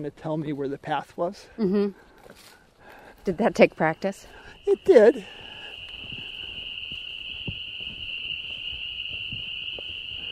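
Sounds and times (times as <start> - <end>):
speech: 0.0 - 2.6, 3.2 - 5.4
spring peeper frogs calling: 3.4 - 9.2.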